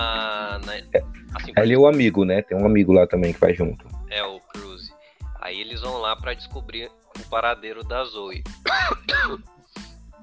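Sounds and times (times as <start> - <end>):
speech: 0.0 - 4.4, 5.4 - 9.5
person sneezing: 8.7 - 9.4.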